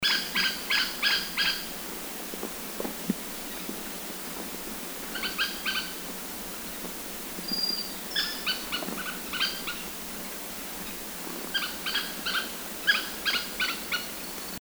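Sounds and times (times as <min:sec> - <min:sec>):
Bay Woodpecker Blythipicus pyrrhotis sinensis call in Guangxi Da Yao Shan: 0:00.0 - 0:14.5.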